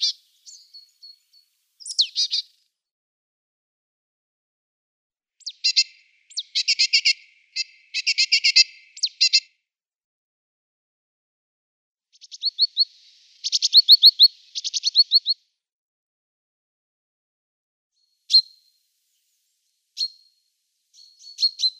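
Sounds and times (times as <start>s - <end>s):
great tit calls: 0.0s - 2.6s, 5.4s - 9.5s, 12.2s - 15.4s, 18.3s - 18.8s, 20.0s - 21.7s
speech: 14.0s - 14.4s.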